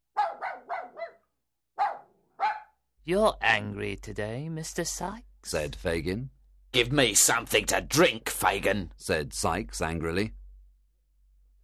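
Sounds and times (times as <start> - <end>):
old dog barking: 0.1 - 2.8
speech: 3.1 - 10.4.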